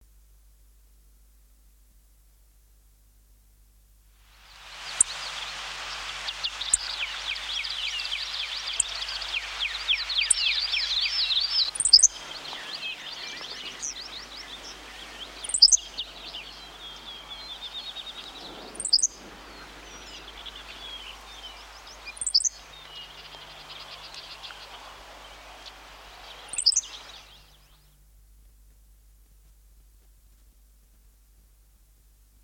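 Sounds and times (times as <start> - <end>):
songbirds: 4.3 - 30.8
Henslow's sparrow: 4.9 - 27.9.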